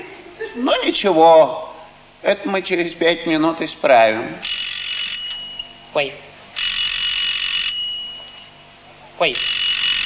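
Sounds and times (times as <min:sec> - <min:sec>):
speech: 0:00.6 - 0:04.5, 0:06.0 - 0:06.3, 0:09.2 - 0:09.5
mobile phone ringing: 0:04.4 - 0:05.6, 0:06.6 - 0:08.5, 0:09.4 - 0:10.0.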